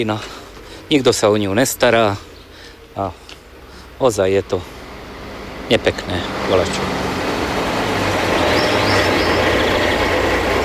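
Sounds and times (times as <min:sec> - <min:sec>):
speech: 0:00.0 - 0:02.3, 0:03.0 - 0:03.2, 0:04.0 - 0:04.8, 0:05.7 - 0:07.0
train rumbling past a street crossing: 0:04.7 - 0:10.6.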